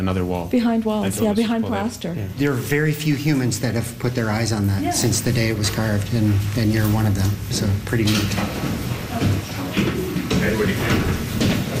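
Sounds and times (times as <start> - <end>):
speech: 0.0 - 11.3
voices: 0.0 - 11.7
shuffling: 4.5 - 11.7
heavy door into the Confederation Chamber scraping open: 6.9 - 11.7.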